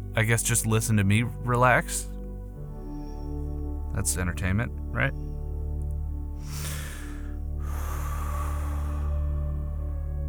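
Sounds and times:
steady tonal background: 0.0 - 10.2
speech: 0.2 - 2.1, 4.0 - 5.3
quick breath in through the mouth and short bursts out: 6.4 - 9.6.

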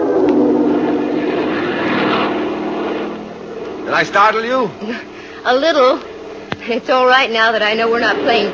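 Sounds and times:
airplane engine drone while banking toward an airfield: 0.0 - 8.5
speech: 4.0 - 8.5.

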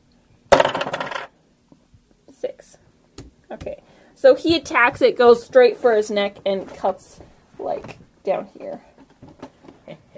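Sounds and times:
dice rolling on a hard tabletop: 0.6 - 1.3
speech: 3.6 - 7.2, 8.2 - 8.9.

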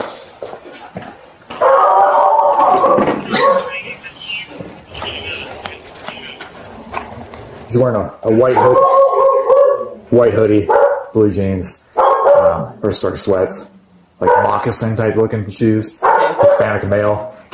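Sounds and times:
dog howling, sustained and wavering: 1.5 - 3.7, 8.6 - 10.0
homeowner's dogs barking, shut away: 1.5 - 3.9, 8.4 - 11.2, 11.9 - 12.8, 14.2 - 14.8, 16.0 - 17.4
speech: 7.8 - 8.9, 10.2 - 11.8, 12.8 - 16.0, 16.6 - 17.5.

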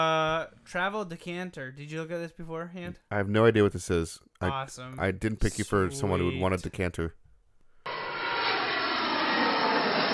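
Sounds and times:
speech: 0.0 - 7.2
airplane engine drone in an aircraft cabin: 7.9 - 10.1.

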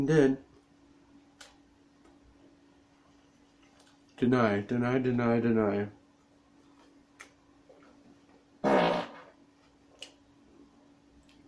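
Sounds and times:
speech: 0.0 - 0.5, 4.2 - 6.0
raspberry blown with the lips: 8.6 - 9.4.

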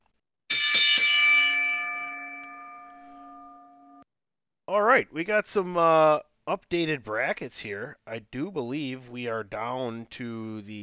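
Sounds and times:
bell struck and ringing with a bright sustained tone: 0.5 - 4.0
speech: 4.7 - 10.8.

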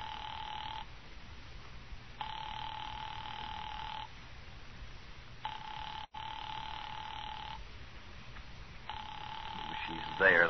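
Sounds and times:
telephone ringing over a phone line: 0.0 - 0.9, 2.2 - 4.1, 5.4 - 7.6, 8.9 - 10.4
steady hiss: 0.0 - 10.4.

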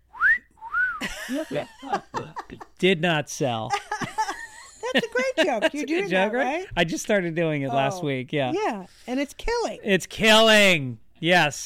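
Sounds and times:
person whistling by mouth to imitate a whistle: 0.1 - 1.0
laughter: 1.0 - 2.8, 3.6 - 6.3
speech: 1.3 - 3.8, 4.9 - 11.6.

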